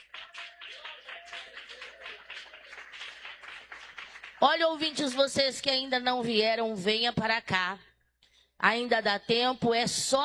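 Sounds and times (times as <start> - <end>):
audience clapping applause: 0.0 - 5.6
speech: 4.4 - 7.9, 8.6 - 10.2.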